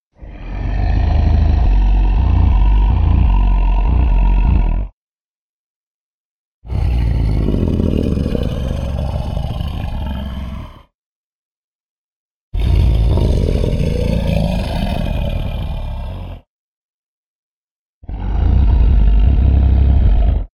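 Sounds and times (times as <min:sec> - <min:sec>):
diplodocus roar: 0:00.2 - 0:05.0, 0:06.7 - 0:10.9, 0:12.6 - 0:16.5, 0:18.0 - 0:20.5.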